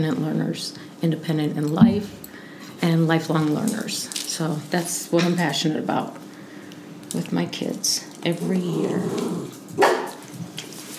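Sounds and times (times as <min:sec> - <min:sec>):
speech: 0:00.0 - 0:06.2, 0:07.1 - 0:10.0
dog bark: 0:09.8 - 0:10.2.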